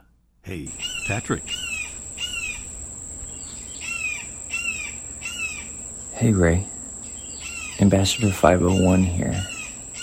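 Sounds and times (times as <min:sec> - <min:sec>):
speech: 0:00.5 - 0:01.7, 0:06.2 - 0:06.7, 0:07.8 - 0:09.5
steady high-pitched tone: 0:00.5 - 0:10.0
juvenile red-shouldered hawk giving down-slurred squealing calls: 0:00.6 - 0:06.2, 0:06.8 - 0:10.0.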